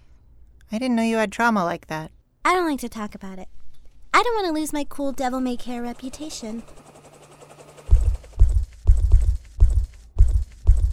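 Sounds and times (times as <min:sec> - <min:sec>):
speech: 0:00.7 - 0:03.6, 0:04.2 - 0:06.9
heavy jackboots stomping on a rooftop: 0:08.0 - 0:10.9.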